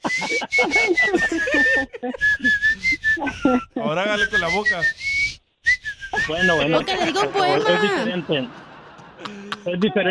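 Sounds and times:
laughter: 0.0 - 4.8, 6.2 - 10.1
chatter and murmuring voices: 0.0 - 4.9, 6.2 - 10.1
person whistling a song's melody: 0.0 - 6.7
speech: 0.2 - 2.5, 3.5 - 5.1, 6.3 - 10.1.

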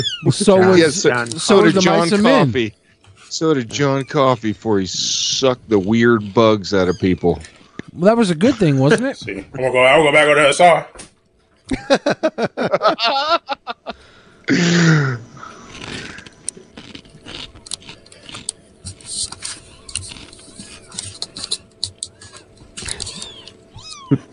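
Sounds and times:
kittens meowing: 0.0 - 0.6, 6.7 - 7.7, 22.8 - 24.3
speech: 0.2 - 11.1, 11.7 - 15.3
laughter: 11.7 - 14.1
scattered clicks: 17.5 - 23.6.

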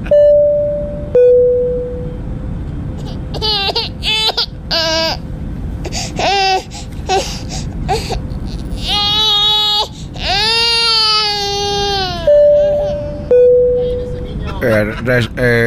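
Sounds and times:
steady rumble on a passenger flight: 0.0 - 15.6
baby crying on a passenger flight: 3.0 - 5.2, 5.9 - 13.3.

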